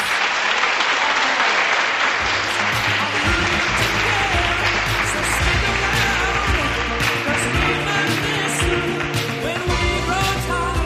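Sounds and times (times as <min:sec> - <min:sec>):
crowd of students applauding: 0:00.0 - 0:10.7.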